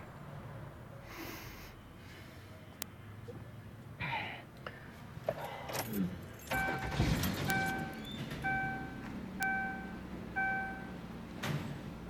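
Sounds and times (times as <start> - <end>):
heavy breathing: 1.0 - 2.7, 4.0 - 6.4
car engine cranking and starting: 5.2 - 12.0
electronic chimes: 6.5 - 10.9.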